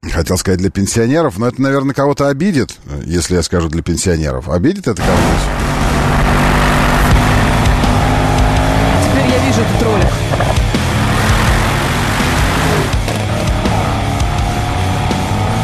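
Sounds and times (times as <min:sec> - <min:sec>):
speech: 0:00.0 - 0:06.6
car engine with sport straight-through exhaust revving: 0:05.0 - 0:15.6.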